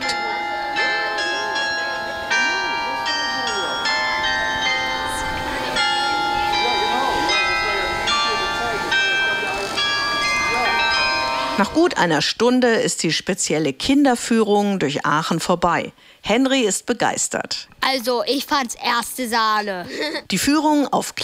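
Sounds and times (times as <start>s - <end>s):
town hall carillon chiming a bright melody: 0.0s - 12.6s
speech: 11.6s - 21.2s.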